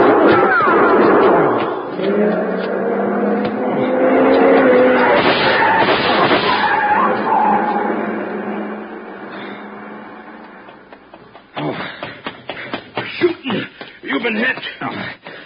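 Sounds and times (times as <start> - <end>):
people talking: 0.2 - 1.1, 13.1 - 15.2
long black coupe accelerating away fast: 2.0 - 11.1.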